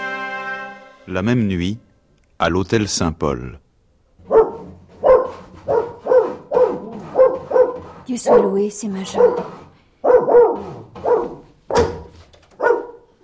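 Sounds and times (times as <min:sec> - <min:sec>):
speech: 0:01.1 - 0:03.6, 0:08.1 - 0:09.6
dog barking loud and hoarse: 0:04.2 - 0:13.1.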